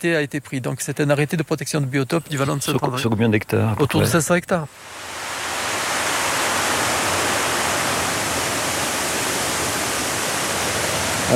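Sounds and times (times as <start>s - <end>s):
speech: 0.0s - 5.2s
flood-swollen stream rushing in a protected valley: 4.7s - 11.3s.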